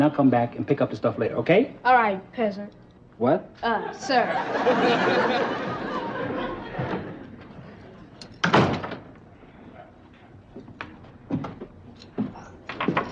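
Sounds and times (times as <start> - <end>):
speech: 0.0 - 6.4
laughter: 3.8 - 8.0
door slamming shut: 8.4 - 9.1.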